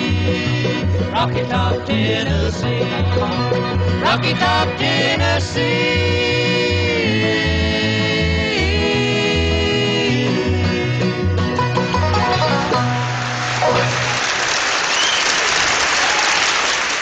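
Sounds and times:
song music: 0:00.0 - 0:14.6
speech: 0:00.3 - 0:07.5
loud sustained audience applause: 0:12.3 - 0:17.0.

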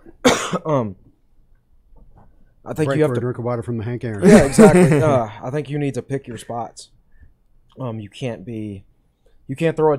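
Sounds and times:
person coughing after something went down the wrong pipe: 0:00.0 - 0:00.9
speech: 0:00.5 - 0:01.0, 0:02.6 - 0:07.0, 0:07.8 - 0:08.9, 0:09.5 - 0:09.9
laughter: 0:04.2 - 0:05.3.

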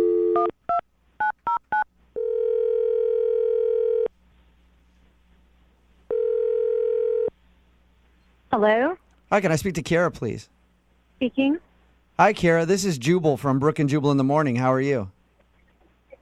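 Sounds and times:
telephone ringback tone: 0:00.0 - 0:00.5, 0:01.5 - 0:04.1, 0:06.1 - 0:07.3
speech: 0:08.6 - 0:10.6, 0:11.2 - 0:15.2.

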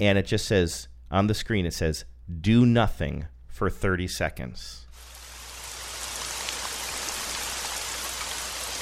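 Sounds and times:
speech: 0:00.0 - 0:05.1
rain falling on leaves in a wooded area: 0:05.0 - 0:08.8.

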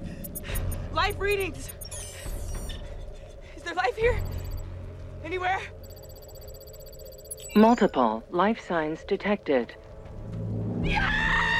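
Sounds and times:
low droning background: 0:00.0 - 0:11.5
speech: 0:01.0 - 0:01.8, 0:03.8 - 0:04.3, 0:05.2 - 0:05.8, 0:07.6 - 0:09.8, 0:10.8 - 0:11.2
loud high-pitched excited scream: 0:10.8 - 0:11.5.

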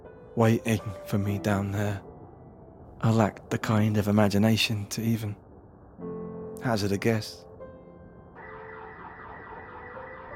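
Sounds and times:
speech: 0:00.4 - 0:02.1, 0:03.0 - 0:05.4, 0:06.0 - 0:07.5
car alarm electronic siren: 0:08.4 - 0:10.3.

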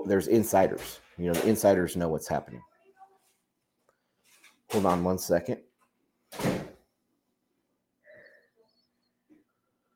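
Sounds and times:
speech: 0:00.1 - 0:02.7, 0:04.7 - 0:05.7
house front door banging shut: 0:06.3 - 0:06.8.

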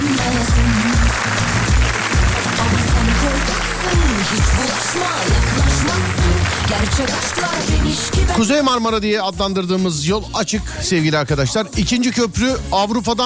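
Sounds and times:
crowd clapping: 0:00.0 - 0:08.8
speech: 0:07.0 - 0:13.2.

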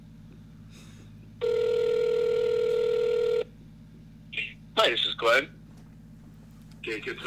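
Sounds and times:
buzzy phone ringback tone heard through the receiver: 0:01.4 - 0:03.5
speech: 0:04.9 - 0:05.6, 0:06.8 - 0:07.2.

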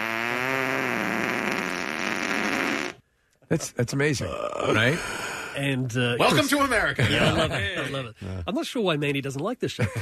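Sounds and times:
buzzy electronic toy fart sound effect: 0:00.0 - 0:03.0
speech: 0:03.5 - 0:10.0
laughter: 0:06.3 - 0:08.4, 0:09.8 - 0:10.0.

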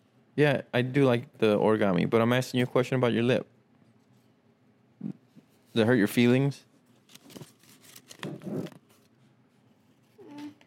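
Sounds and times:
speech: 0:00.4 - 0:03.5, 0:05.8 - 0:06.7
paper being crumpled into a ball: 0:06.9 - 0:09.1.

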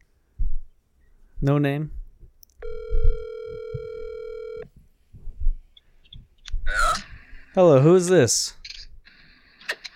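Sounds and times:
speech: 0:01.4 - 0:02.0, 0:07.6 - 0:08.6
phone ringback tone during outgoing call: 0:02.6 - 0:04.7.

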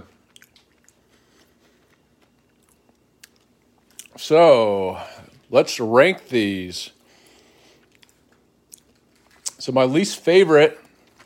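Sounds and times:
biting and chewing a crunchy Halloween-candy-size chocolate bar: 0:00.0 - 0:04.2, 0:07.8 - 0:09.6, 0:10.8 - 0:11.2
speech: 0:04.2 - 0:07.0, 0:09.6 - 0:10.8.

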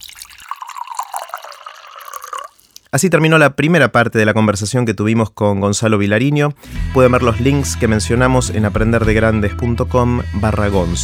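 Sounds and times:
water pouring into a glass for drinking: 0:00.0 - 0:02.9
speech: 0:02.9 - 0:11.0.

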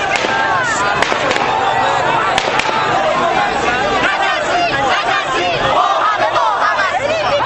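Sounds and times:
sharp gunshot cracks: 0:00.0 - 0:03.1
angry crowd shouting and chanting slogans: 0:00.0 - 0:07.4.

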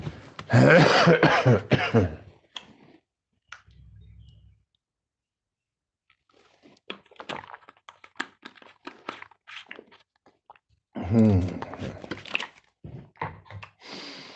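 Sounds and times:
throat clearing and coughing: 0:00.5 - 0:02.3.

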